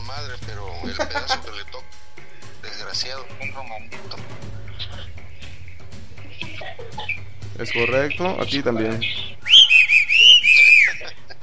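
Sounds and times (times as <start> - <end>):
speech: 0.1 - 2.2, 2.9 - 5.2, 6.6 - 9.8
laughter: 0.6 - 1.9, 2.6 - 9.4, 10.2 - 11.4
person whistling a short melodic phrase: 9.2 - 11.1.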